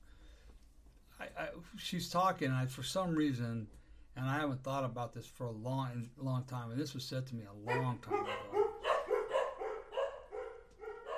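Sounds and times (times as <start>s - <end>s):
speech: 1.4s - 8.5s
dogs barking: 7.7s - 11.1s.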